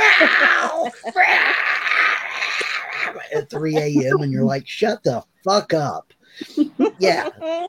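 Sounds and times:
laughter: 0:00.0 - 0:04.6, 0:06.4 - 0:07.6
person imitating cat yowling in heat: 0:00.0 - 0:04.6
speech: 0:03.5 - 0:07.6.

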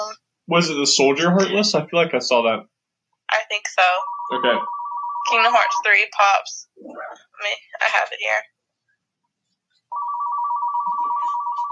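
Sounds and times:
speech: 0:00.5 - 0:02.7, 0:03.3 - 0:08.5
office phone ringing with a warbling electronic tone: 0:03.8 - 0:06.3, 0:09.9 - 0:11.7.

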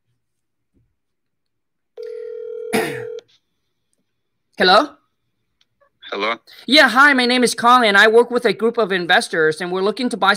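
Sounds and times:
steady electronic ringback tone of an outgoing phone call: 0:02.0 - 0:03.2
speech: 0:04.6 - 0:05.0, 0:06.1 - 0:10.3.

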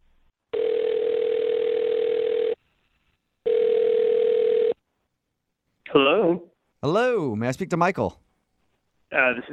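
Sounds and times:
long steady telephone ringing tones: 0:00.5 - 0:02.6, 0:03.4 - 0:04.8
speech: 0:06.0 - 0:08.2, 0:09.2 - 0:09.5.

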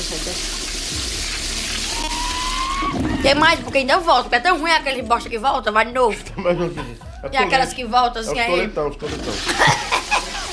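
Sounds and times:
toilet flushing: 0:00.0 - 0:05.7, 0:08.5 - 0:10.5
thin rising whistling tone: 0:01.8 - 0:03.7
speech: 0:03.0 - 0:09.9
laughter: 0:06.0 - 0:07.8, 0:09.0 - 0:10.5.

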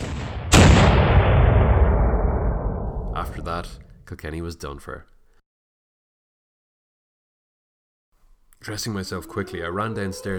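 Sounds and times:
cannon blast breaching city walls: 0:00.0 - 0:04.0
speech: 0:03.2 - 0:05.1, 0:08.6 - 0:10.3.

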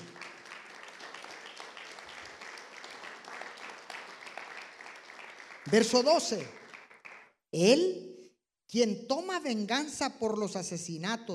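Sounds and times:
audience at a church service applauding: 0:00.0 - 0:07.4
speech: 0:05.7 - 0:06.6, 0:07.5 - 0:08.1, 0:08.7 - 0:11.3.

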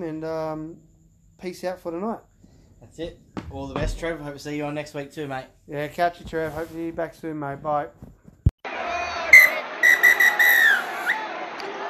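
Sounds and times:
speech: 0:00.0 - 0:08.2
referee's final whistle blasts: 0:09.3 - 0:11.2.

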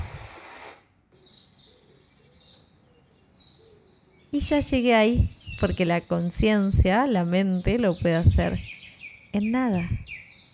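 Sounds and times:
brief rush of broadband noise: 0:00.0 - 0:00.9
birds chirping in a forest: 0:01.1 - 0:10.5
speech: 0:04.3 - 0:08.7, 0:09.3 - 0:10.0.

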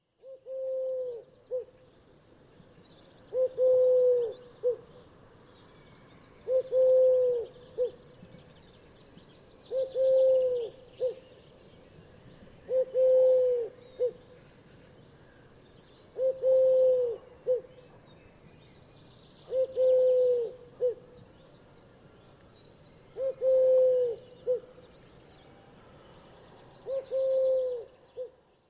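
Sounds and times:
Eurasian collared dove Streptopelia decaocto cooing: 0:00.2 - 0:01.7, 0:03.3 - 0:04.8, 0:06.5 - 0:08.0, 0:09.7 - 0:11.2, 0:12.7 - 0:14.2, 0:16.2 - 0:17.7, 0:19.5 - 0:21.0, 0:23.2 - 0:24.7, 0:26.8 - 0:28.4.

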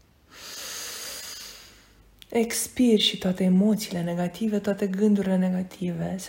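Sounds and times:
slow deep inhale during a guided relaxation meditation: 0:00.2 - 0:02.0
speech: 0:02.3 - 0:06.2.

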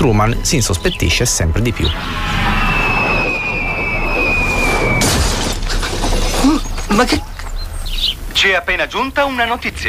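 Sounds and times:
speech: 0:00.0 - 0:02.7, 0:06.9 - 0:07.3, 0:08.4 - 0:09.8
heavy stage spotlight whistling down through the air: 0:01.8 - 0:05.8
loud crash of breaking glass and metal from a falling stage spotlight: 0:05.0 - 0:06.8
scattering debris: 0:05.0 - 0:07.0.

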